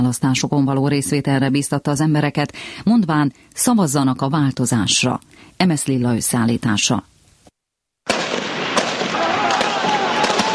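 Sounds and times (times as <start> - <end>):
speech: 0.0 - 7.1
burst of gunfire: 8.1 - 10.5
explosions: 8.1 - 10.5.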